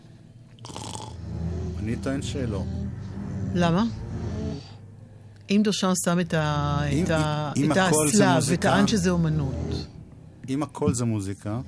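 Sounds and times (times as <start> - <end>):
person snoring: 0.6 - 4.9
speech: 1.9 - 2.8, 3.6 - 4.0, 5.5 - 9.9, 10.5 - 11.6.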